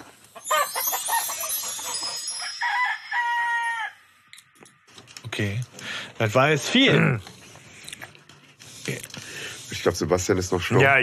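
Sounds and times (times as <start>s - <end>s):
rooster crowing: 2.3s - 4.2s
speech: 5.4s - 7.3s, 8.8s - 9.2s, 9.8s - 11.0s.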